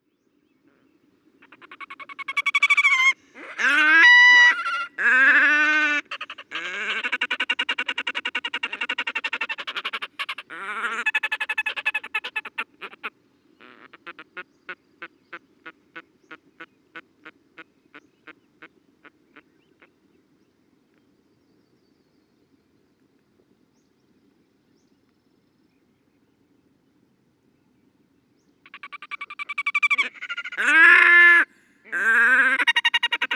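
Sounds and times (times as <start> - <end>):
red-necked grebe calling: 1.4 - 14.4, 28.7 - 33.3.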